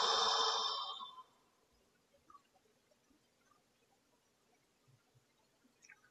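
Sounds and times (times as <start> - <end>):
deep breathy exhale out through the mouth: 0.0 - 1.2.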